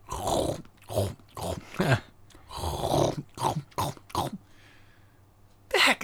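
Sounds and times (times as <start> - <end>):
voice imitating raccoons eating dog food outside a tent: 0.0 - 4.5
speech: 1.8 - 2.0.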